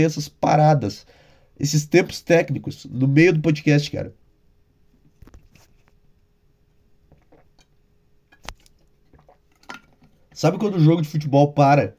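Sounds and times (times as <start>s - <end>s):
speech: 0.0s - 4.2s, 10.4s - 11.9s
person drinking water with soft gulps: 7.1s - 7.7s, 8.8s - 10.0s.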